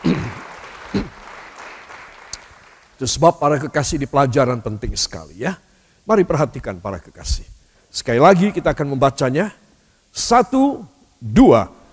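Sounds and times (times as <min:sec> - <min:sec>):
crowd applause at a speaker's request: 0:00.0 - 0:03.0
speech: 0:03.0 - 0:11.8.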